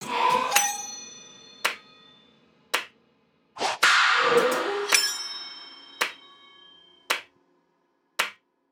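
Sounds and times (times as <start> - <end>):
blacksmith percussion loop: 1.7 - 2.0, 3.8 - 6.4.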